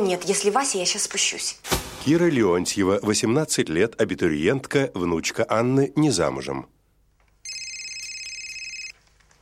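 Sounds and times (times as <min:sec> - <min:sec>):
speech: 0:00.1 - 0:06.8
telephone ringing: 0:07.4 - 0:09.0.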